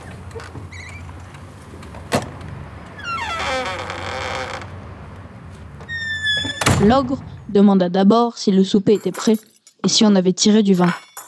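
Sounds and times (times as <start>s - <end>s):
door hinges creaking: 0.0s - 7.6s
speech: 0.4s - 0.8s, 6.8s - 11.1s
door latch click: 4.6s - 7.5s.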